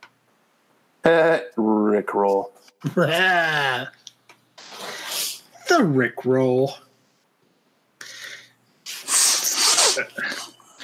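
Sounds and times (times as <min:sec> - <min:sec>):
speech: 0:01.0 - 0:04.0, 0:05.7 - 0:06.9
person sneezing: 0:08.9 - 0:10.6.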